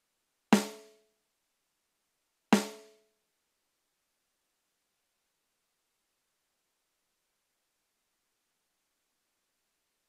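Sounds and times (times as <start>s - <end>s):
snare drum hit: 0.6s - 0.9s, 2.6s - 3.0s.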